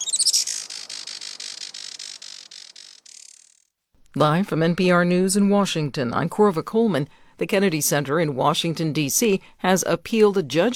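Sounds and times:
Juan Fernandez firecrown hummingbird calls: 0.0s - 3.6s
speech: 4.2s - 10.7s.

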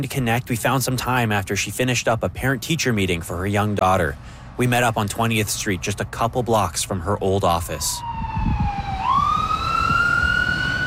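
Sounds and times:
speech: 0.0s - 8.6s
engine rumble: 0.0s - 10.8s
vehicles passing on 20th Street: 0.0s - 10.8s
emergency siren wailing: 7.4s - 10.8s.

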